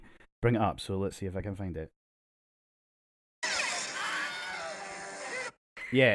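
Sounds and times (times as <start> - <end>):
speech: 0.4 - 2.0, 5.9 - 6.1
loud strained stock film scream sound effect: 3.4 - 5.6.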